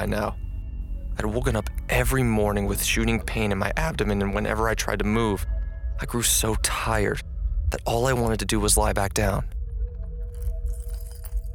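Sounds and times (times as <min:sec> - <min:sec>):
speech: 0:00.0 - 0:00.4, 0:01.2 - 0:09.6
low rumbling background: 0:00.0 - 0:11.5
set of keys jangling while unlocking door locks: 0:10.4 - 0:11.5.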